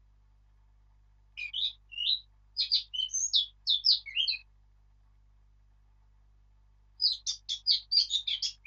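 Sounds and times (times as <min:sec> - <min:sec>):
Eurasian blackcap Sylvia atricapilla singing: 0:01.4 - 0:04.5, 0:07.0 - 0:08.6.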